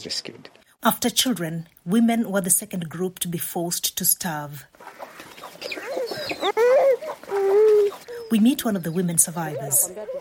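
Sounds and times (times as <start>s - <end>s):
speech: 0.0s - 5.0s, 5.6s - 6.8s, 8.3s - 10.1s
faint outdoor noise: 0.0s - 10.1s
chickens clucking and squawking in a compound: 4.8s - 10.1s.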